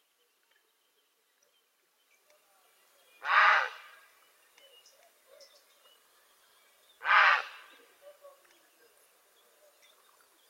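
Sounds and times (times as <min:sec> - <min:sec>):
quiet bird chirps: 0:00.0 - 0:10.4
grey heron croaking: 0:03.2 - 0:04.0, 0:07.0 - 0:08.0.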